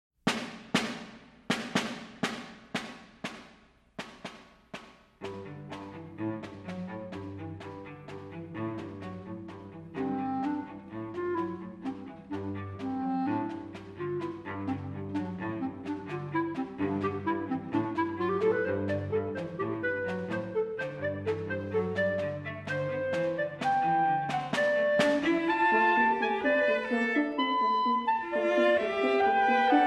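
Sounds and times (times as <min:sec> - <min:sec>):
side drum in a quartet: 0:00.2 - 0:09.6, 0:22.7 - 0:25.6
cello in a quartet: 0:04.3 - 0:29.8
clarinet in a quartet: 0:05.2 - 0:29.8
horn in a quartet: 0:10.0 - 0:29.8.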